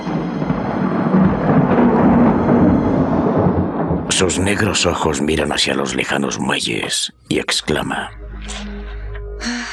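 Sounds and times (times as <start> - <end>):
thunder from an approaching storm on a hot stifling night: 0.0 - 7.0
speech: 4.1 - 8.7.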